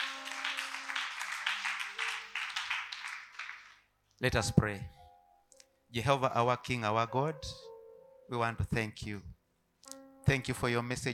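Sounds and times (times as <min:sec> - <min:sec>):
audience clapping: 0:00.0 - 0:03.9
speech: 0:04.2 - 0:05.0, 0:05.9 - 0:07.7, 0:08.3 - 0:09.3, 0:10.3 - 0:11.1.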